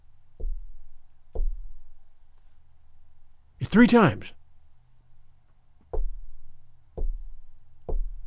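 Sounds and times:
hollow knocking on a front door: 0:00.4 - 0:02.0, 0:05.9 - 0:08.2
speech: 0:03.7 - 0:04.4.

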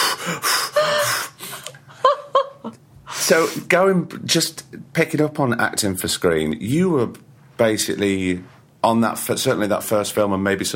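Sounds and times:
person gasping for air: 0:00.0 - 0:01.8
speech: 0:03.3 - 0:10.7.

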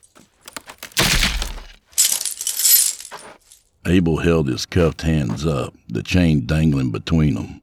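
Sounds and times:
wood cracking and splintering as an anchor tears from it: 0:00.0 - 0:03.6
speech: 0:03.9 - 0:07.6.

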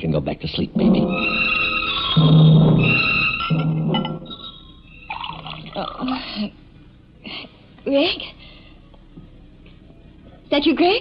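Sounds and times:
voice-like sounds: 0:00.0 - 0:01.4
speech: 0:00.0 - 0:04.2, 0:05.8 - 0:06.6, 0:07.2 - 0:08.4, 0:10.5 - 0:11.0
liquid gurgling as it is poured into a glass: 0:05.1 - 0:06.2.

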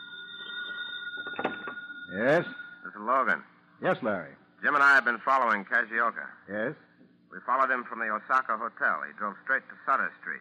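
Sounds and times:
telephone ringing with bright electronic tone: 0:00.0 - 0:03.4
speech: 0:02.1 - 0:10.4.

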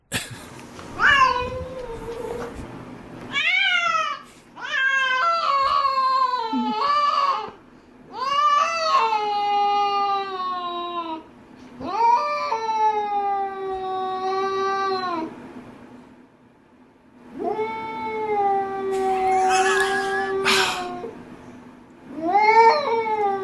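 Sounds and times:
cats yowling while mating: 0:01.0 - 0:02.6, 0:03.3 - 0:11.2, 0:11.8 - 0:15.3, 0:17.3 - 0:21.2, 0:22.1 - 0:23.4.

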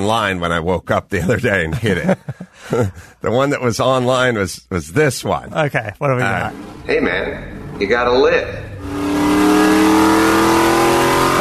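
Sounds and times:
speech: 0:00.0 - 0:09.4
laughter: 0:01.1 - 0:03.2
car engine revving: 0:06.2 - 0:11.3.

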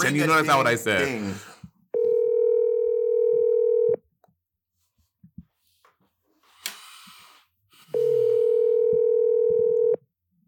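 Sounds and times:
speech: 0:00.0 - 0:01.5
telephone ringback tone of an outgoing call: 0:02.0 - 0:04.0, 0:08.0 - 0:10.0.

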